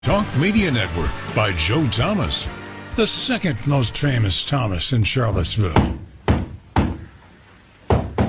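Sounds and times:
speech: 0:00.1 - 0:06.0
knocking on a door: 0:05.8 - 0:07.0, 0:07.9 - 0:08.2.

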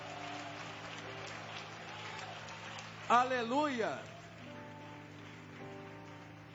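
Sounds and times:
audience clapping: 0:00.0 - 0:06.5
speech: 0:03.1 - 0:04.2.

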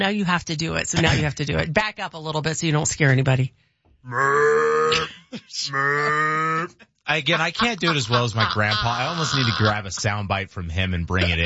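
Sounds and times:
speech: 0:00.0 - 0:11.4
person aggressively imitating a loud cow moo call: 0:04.1 - 0:06.8, 0:08.1 - 0:09.9
laughter: 0:07.2 - 0:10.4, 0:11.1 - 0:11.4.

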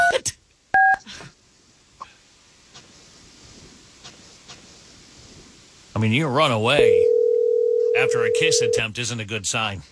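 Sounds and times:
hiss: 0:00.2 - 0:09.8
speech: 0:06.0 - 0:07.0, 0:08.0 - 0:09.8
telephone keypad tone: 0:06.8 - 0:08.8.

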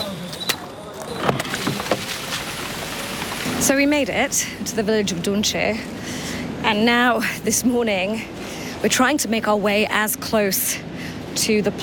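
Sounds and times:
aid truck engine rumble on a muddy winding road: 0:00.0 - 0:11.8
water sloshing and splashing on a muddy road: 0:00.9 - 0:06.2
speech: 0:03.6 - 0:11.8.

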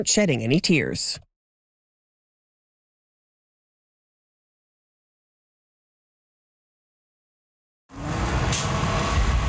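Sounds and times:
speech: 0:00.0 - 0:01.3
large double-decker bus engine drone pulling into a station: 0:07.9 - 0:09.4
double-decker bus air brakes hissing: 0:08.2 - 0:09.4.

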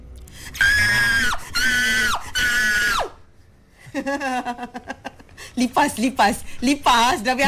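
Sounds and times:
person acting out terror with high-pitched screams: 0:00.6 - 0:03.2
speech: 0:04.0 - 0:04.8, 0:05.6 - 0:07.4.

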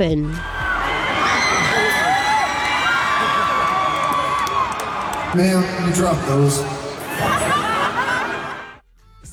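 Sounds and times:
speech: 0:00.0 - 0:00.6, 0:05.3 - 0:06.8
large concert crowd cheering and whooping: 0:00.3 - 0:08.8
laughter: 0:00.8 - 0:02.5, 0:05.0 - 0:08.8.

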